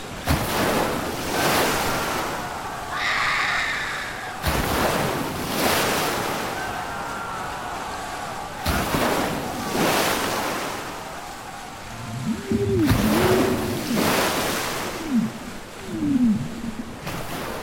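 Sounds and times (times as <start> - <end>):
ocean waves crashing: 0.0 - 17.6
faint high-pitched cries: 1.8 - 4.5.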